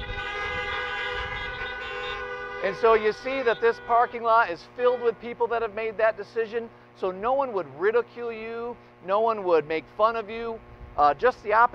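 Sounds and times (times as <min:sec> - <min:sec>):
car horns honking in a parking lot: 0:00.0 - 0:05.7
speech: 0:02.6 - 0:11.7.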